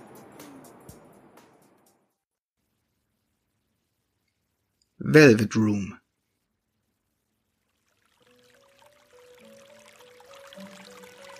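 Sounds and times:
speech: 0:05.0 - 0:06.0
soft trickling water: 0:07.0 - 0:11.3
slow gentle melody of sustained tones: 0:07.6 - 0:11.3.

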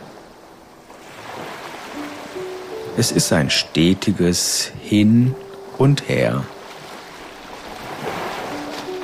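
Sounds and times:
ocean waves surging on a beach: 0:00.0 - 0:09.0
speech: 0:03.0 - 0:06.6.

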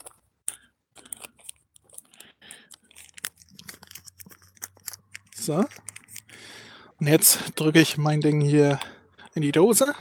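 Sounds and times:
paper receipt crinkling while folded and wrapped around a roll: 0:01.0 - 0:06.4
speech: 0:05.5 - 0:05.9, 0:07.0 - 0:09.9.

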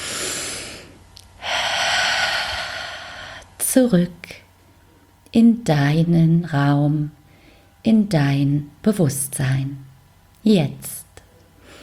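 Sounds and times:
deep breathing during a guided meditation: 0:00.0 - 0:03.6, 0:07.2 - 0:07.8, 0:11.6 - 0:11.8
speech: 0:03.7 - 0:04.4, 0:05.3 - 0:07.2, 0:07.8 - 0:11.0.

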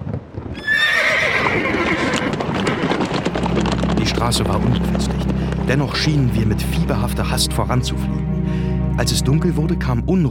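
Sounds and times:
hooves clattering of a horse-drawn coach setting off: 0:00.0 - 0:08.1
horse whinnying as a horse-drawn coach sets off: 0:00.5 - 0:03.7
speech: 0:04.2 - 0:10.2.

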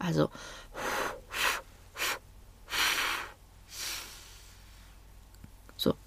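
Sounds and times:
speech: 0:00.0 - 0:00.8, 0:05.8 - 0:06.0
breathy complete exhalation through the mouth in airy bursts: 0:00.4 - 0:04.7.

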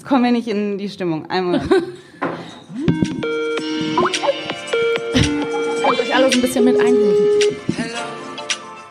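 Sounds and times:
speech: 0:00.1 - 0:02.2, 0:06.3 - 0:07.7
Skype electronic ringtone melody from a phone speaker: 0:02.8 - 0:07.8.

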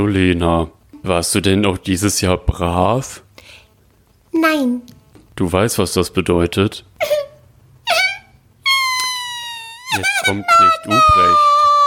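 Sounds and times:
speech: 0:00.0 - 0:03.2, 0:04.4 - 0:07.2, 0:10.0 - 0:11.7
child crying and wailing: 0:07.0 - 0:11.8.

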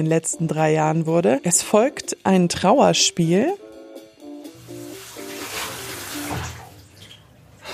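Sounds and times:
speech: 0:00.0 - 0:03.6
tap water splashing and gurgling over a vacuum cleaner filter being rinsed: 0:04.9 - 0:07.3.

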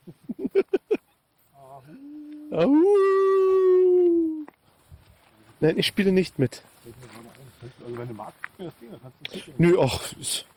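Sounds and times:
person imitating a wolf with yips and howl in Brandenburg Germany: 0:01.9 - 0:04.5
speech: 0:02.6 - 0:03.2, 0:05.6 - 0:07.0, 0:08.0 - 0:10.5.

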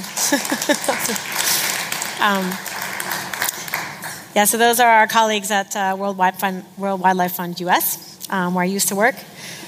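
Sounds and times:
audience clapping: 0:00.0 - 0:04.6
person laughing: 0:00.2 - 0:01.3
speech: 0:00.3 - 0:03.2, 0:04.4 - 0:09.4.

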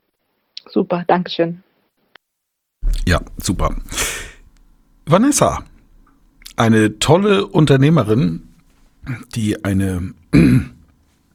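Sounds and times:
speech: 0:00.7 - 0:01.7, 0:03.1 - 0:04.0, 0:05.1 - 0:05.7, 0:06.6 - 0:10.8
person clearing throat: 0:02.8 - 0:04.4, 0:10.3 - 0:10.8.

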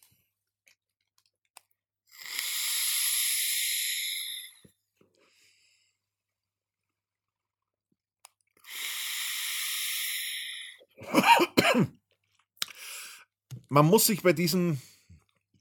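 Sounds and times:
hissing draws on a TFV4 vaporizer tank at 115 watts: 0:02.2 - 0:04.6, 0:08.6 - 0:10.8
harsh coughing after a deep vape inhale: 0:11.0 - 0:12.0
speech: 0:11.8 - 0:12.0, 0:13.7 - 0:14.9.

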